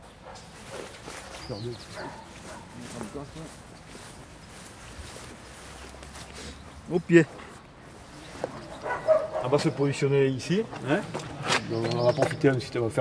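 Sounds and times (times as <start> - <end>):
speech: 1.5 - 4.0, 6.9 - 7.4, 9.4 - 12.9
dog barking in short bursts: 1.9 - 2.8, 8.6 - 9.7.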